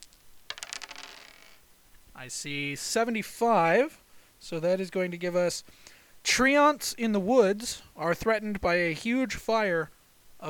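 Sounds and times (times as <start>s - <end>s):
percentile dice rattling on a hard surface: 0.1s - 1.6s
speech: 2.2s - 10.4s.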